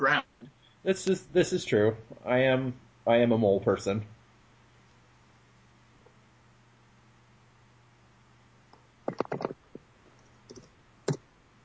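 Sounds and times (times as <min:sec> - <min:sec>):
speech: 0:00.0 - 0:04.2
fast typing on a laptop keyboard: 0:10.5 - 0:11.2.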